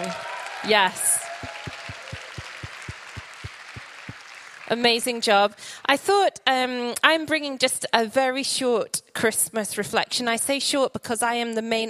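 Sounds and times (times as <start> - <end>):
crowd at a Christmas gathering applauding and cheering: 0.0 - 5.1
speech: 0.1 - 1.1, 4.7 - 11.8
regular low thumps like stomping feet: 1.4 - 4.2.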